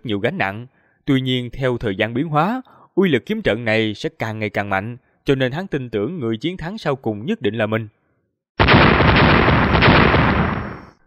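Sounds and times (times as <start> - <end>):
speech: 0.0 - 8.0
explosion sound effect for a fantasy battle: 8.6 - 11.0.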